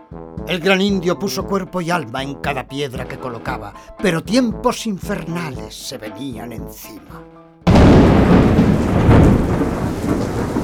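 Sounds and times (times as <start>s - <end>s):
speech: 0.4s - 7.3s
deep rumbling thunder in a heavy thunderstorm: 7.7s - 10.6s
steady dense rainfall in a heavy thunderstorm: 7.7s - 10.6s.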